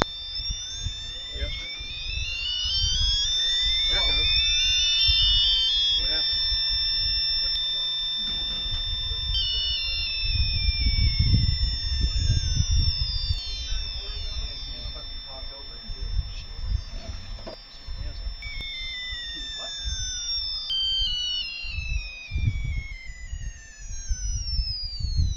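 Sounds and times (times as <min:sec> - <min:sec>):
RA motor running: 0:00.0 - 0:25.3.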